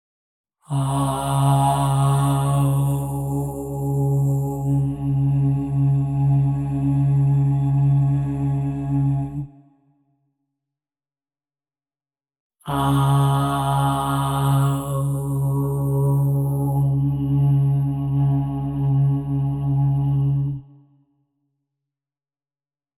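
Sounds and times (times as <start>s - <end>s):
OM tone at 136.1 Hz: 0.7s - 9.4s, 12.7s - 20.8s.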